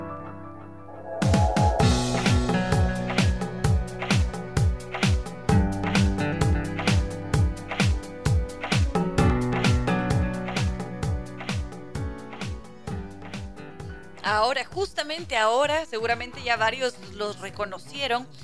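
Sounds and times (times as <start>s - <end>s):
sustained band chords: 0.4s - 4.0s
driving rhythmic beat: 1.2s - 16.6s
speech: 14.6s - 18.4s.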